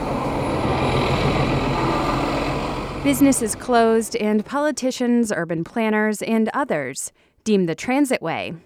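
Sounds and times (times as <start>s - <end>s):
heavy bus engines rumbling on a city street: 0.0s - 4.7s
speech: 3.0s - 8.6s.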